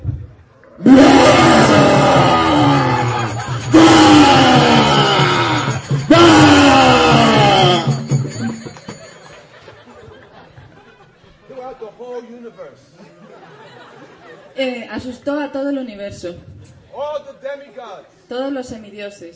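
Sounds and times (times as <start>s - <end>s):
loud booming roars from a pillar: 0.8s - 8.0s
laughter: 1.2s - 5.8s, 6.4s - 11.8s, 12.8s - 14.6s
speech: 15.5s - 19.3s.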